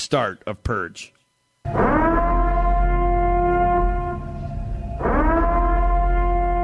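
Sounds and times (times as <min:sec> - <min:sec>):
speech: 0:00.0 - 0:02.1
civil defense siren wailing: 0:01.7 - 0:06.6.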